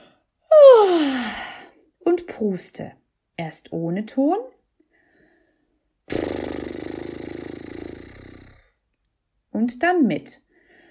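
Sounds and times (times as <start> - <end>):
person yawning as a vocal exercise while standing upright: 0.5 - 1.6
speech: 2.4 - 4.5, 9.6 - 10.4.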